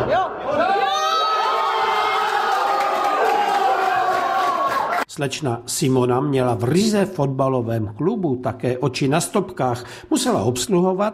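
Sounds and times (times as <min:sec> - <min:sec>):
football fans cheering and shouting a goal in a pub family club in Dolní Němčí: 0:00.0 - 0:05.0
speech: 0:05.2 - 0:11.1.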